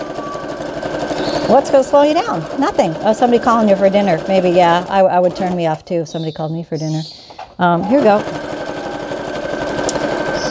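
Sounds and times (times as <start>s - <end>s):
sewing machine stitching a quilt: 0.0s - 5.9s, 7.7s - 10.5s
speech: 1.5s - 8.4s.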